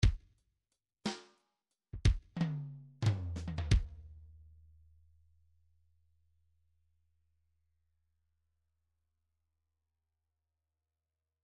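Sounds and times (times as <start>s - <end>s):
MIDI drum fills in three-four time: 2.0s - 3.9s.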